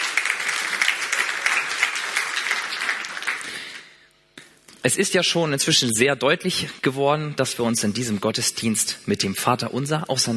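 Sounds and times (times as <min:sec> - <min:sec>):
audience applauding: 0:00.0 - 0:03.9
speech: 0:04.8 - 0:10.3.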